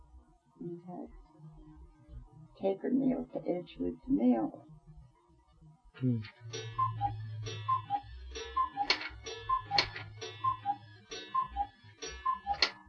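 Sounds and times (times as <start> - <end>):
speech: 0.6 - 4.8, 6.0 - 7.8
clock ticking: 6.2 - 12.8.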